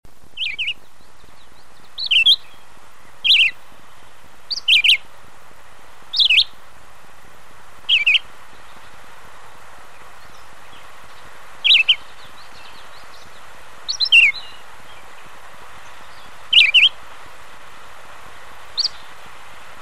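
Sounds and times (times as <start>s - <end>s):
red-eyed vireo singing: 0.3s - 5.1s, 6.1s - 6.6s, 7.8s - 9.1s, 9.8s - 17.0s, 18.7s - 19.2s.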